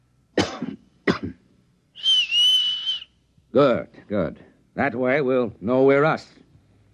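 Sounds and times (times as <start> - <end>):
two sharp coughs given as a signal: 0.4 - 1.5
steady clear whistled tone: 2.0 - 3.2
speech: 3.6 - 6.4.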